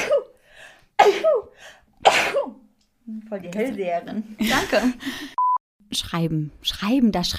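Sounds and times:
person sneezing: 0.0 - 0.3, 1.0 - 2.6
speech: 1.0 - 7.3.

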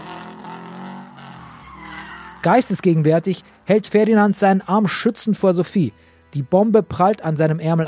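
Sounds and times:
car engine revving hard: 0.0 - 3.7
tires screeching and skidding on pavement: 0.0 - 4.4
speech: 2.4 - 7.8.

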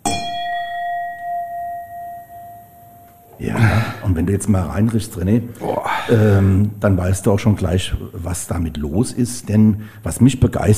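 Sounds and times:
two glasses of Riesling wine clinking in a toast: 0.0 - 3.4
speech: 3.4 - 10.7.

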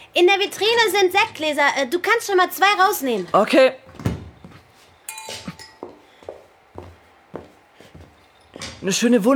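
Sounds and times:
speech: 0.1 - 4.1, 8.8 - 9.3
champagne glasses clinking as they are handled: 5.1 - 6.1.

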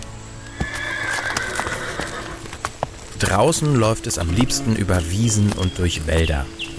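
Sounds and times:
horse hooves clopping: 0.0 - 6.7
horse neighing in a long high whinny: 0.4 - 2.6
speech: 3.2 - 6.6.

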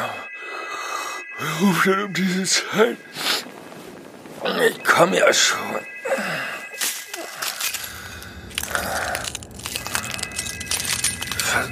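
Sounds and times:
speech: 1.4 - 3.3, 4.4 - 6.5
glass fragments tinkling and scattering: 6.7 - 11.7
glass breaking: 6.8 - 11.7.

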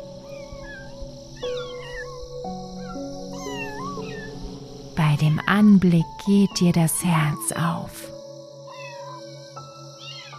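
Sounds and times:
kittens squeaking and mewing while playing: 0.2 - 4.6, 8.7 - 10.3
speech: 5.2 - 8.1.

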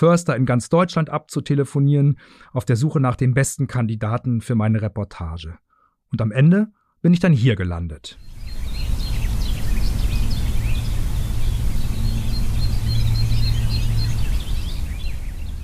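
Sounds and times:
speech: 0.0 - 8.4
chorus of many birds singing in a large linden tree in Hede in the Emsland, Germany: 8.2 - 15.6
steady low rumble: 8.4 - 15.6.

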